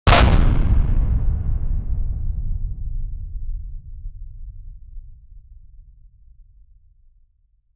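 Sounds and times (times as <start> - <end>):
short explosive impact: 0.1 - 4.1.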